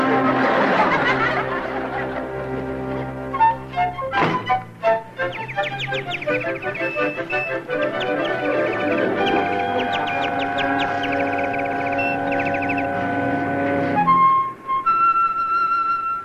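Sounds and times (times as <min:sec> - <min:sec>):
laughter: 0:00.0 - 0:03.1
steady humming drone: 0:00.0 - 0:16.1
Canadian crested warbler singing: 0:04.8 - 0:14.1.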